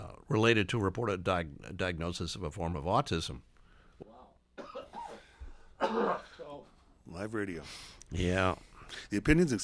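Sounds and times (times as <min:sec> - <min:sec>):
speech: 0:00.3 - 0:03.5, 0:05.9 - 0:06.3, 0:07.1 - 0:09.6
person coughing during a live radio studio conversation: 0:04.6 - 0:06.6.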